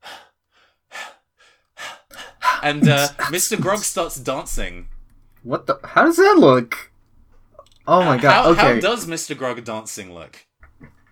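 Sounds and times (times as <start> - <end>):
voice imitating rhythmic panting: 2.1 - 6.1, 7.9 - 9.1
speech: 2.6 - 6.9, 7.9 - 10.9.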